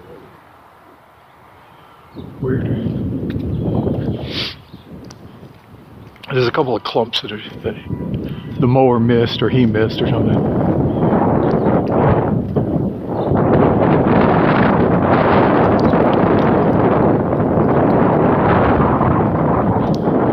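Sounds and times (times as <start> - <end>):
wind blowing hard across a mown lawn buffeting the microphone: 0.0 - 20.3
speech: 2.2 - 4.6, 6.3 - 10.8.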